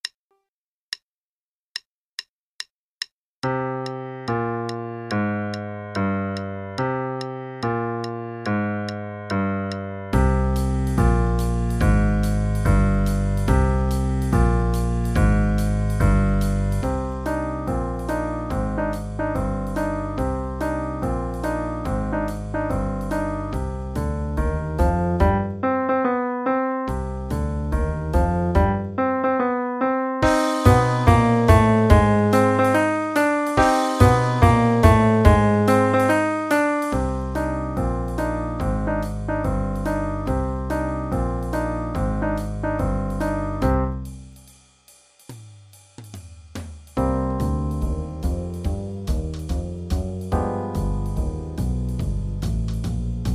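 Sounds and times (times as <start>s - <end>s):
boogie music: 3.4s - 44.2s, 46.6s - 53.3s
bass: 4.3s - 29.6s, 30.2s - 44.6s, 46.9s - 53.3s
drums: 10.2s - 25.4s, 26.9s - 28.8s, 30.2s - 40.4s, 41.2s - 53.3s.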